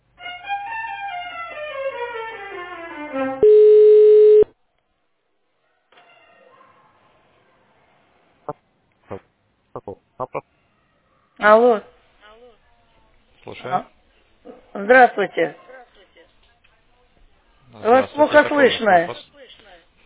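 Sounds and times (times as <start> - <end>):
stepped melodic telephone tones during call transfer to operator: 3.4 - 4.5
speech: 11.4 - 11.9, 13.6 - 13.9, 14.8 - 15.6, 17.8 - 19.2.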